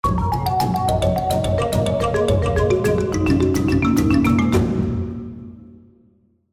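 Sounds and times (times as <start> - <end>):
musical spin effect: 0.1 - 5.1.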